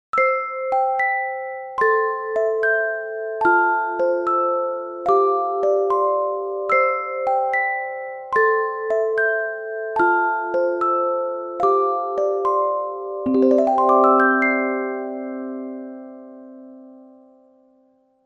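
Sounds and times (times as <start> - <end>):
chime: 0.2 - 18.2.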